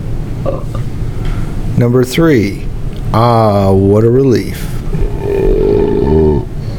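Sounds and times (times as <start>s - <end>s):
long deep loud belch: 0.4s - 0.9s, 4.9s - 6.5s
speech: 0.4s - 0.9s, 1.8s - 5.0s.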